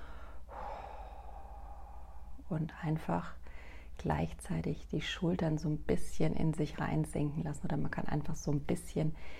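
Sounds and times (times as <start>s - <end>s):
slow calming exhale through the mouth during a breathing exercise: 0.0s - 2.4s
speech: 2.5s - 9.3s.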